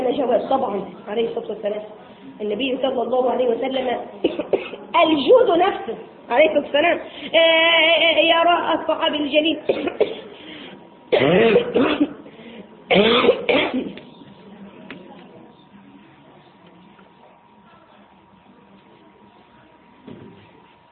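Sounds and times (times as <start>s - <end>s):
faint steady hum: 0.0s - 20.9s
speech: 0.3s - 10.2s, 11.1s - 12.1s, 12.9s - 14.0s
person coughing during a spoken religious lesson: 4.2s - 4.8s, 9.7s - 10.3s, 11.1s - 12.2s, 12.9s - 14.0s.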